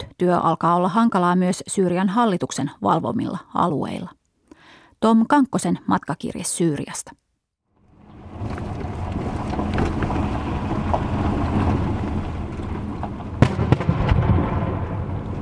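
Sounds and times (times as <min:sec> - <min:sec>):
speech: 0:00.2 - 0:04.2, 0:05.0 - 0:07.2
steady rumble of a moving vehicle: 0:07.7 - 0:15.4
sharp explosion from mine clearance work near Palmyra in central Syria: 0:13.3 - 0:15.4.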